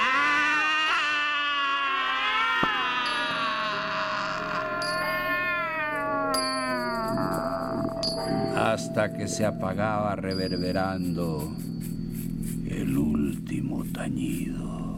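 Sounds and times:
grey cat meowing in a long wavering yowl: 0:00.0 - 0:08.5
speech: 0:08.8 - 0:11.7, 0:12.8 - 0:14.8.

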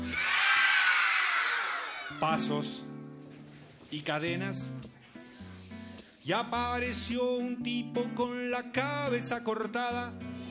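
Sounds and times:
many voices screaming together: 0:00.0 - 0:02.4
speech: 0:02.2 - 0:03.0, 0:03.9 - 0:04.8, 0:06.3 - 0:10.3.

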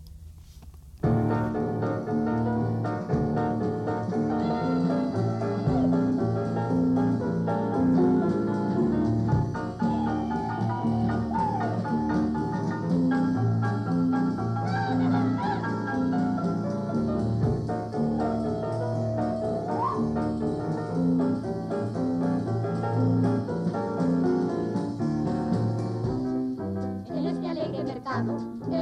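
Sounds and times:
stage musical recording with bass line and layered instruments: 0:01.0 - 0:28.8.

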